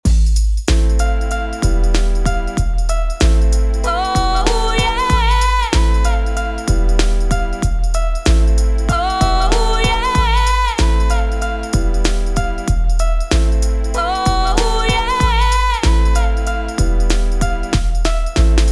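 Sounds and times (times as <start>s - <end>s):
instruments: 0.1s - 18.7s
vocals with sidechain compression: 3.5s - 8.0s, 8.6s - 17.8s.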